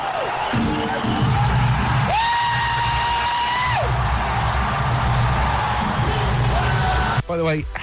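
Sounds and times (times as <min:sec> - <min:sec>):
large concert crowd roaring and cheering as show starts: 0:00.0 - 0:07.3
speech: 0:07.4 - 0:07.8.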